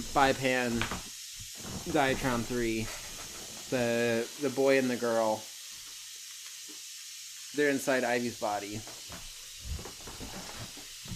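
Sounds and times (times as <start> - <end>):
speech: 0.0 - 1.1, 1.9 - 3.0, 3.7 - 5.5, 7.6 - 9.3
radiator steam valve hissing as the handle is twisted to turn it off: 0.0 - 11.1.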